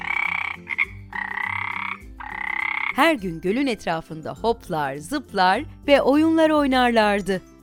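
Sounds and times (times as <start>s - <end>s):
frogs croaking by the edge of a lake: 0.0s - 3.0s
speech: 3.0s - 7.5s.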